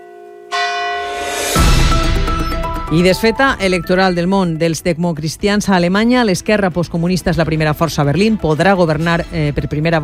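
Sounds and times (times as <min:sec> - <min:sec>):
church bells tolling from an old bell tower marking eight in the evening: 0:00.0 - 0:02.9
speech: 0:02.9 - 0:10.0.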